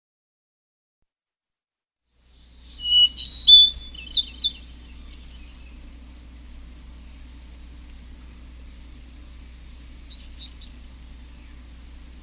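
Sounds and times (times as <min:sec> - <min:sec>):
hermit thrush singing: 0:02.4 - 0:06.0, 0:08.2 - 0:12.2
quiet low hum: 0:02.4 - 0:12.2.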